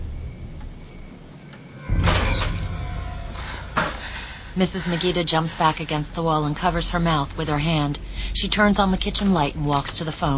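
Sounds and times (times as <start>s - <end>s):
closet door in a house swinging open: 1.4s - 4.2s
speech: 4.6s - 10.3s.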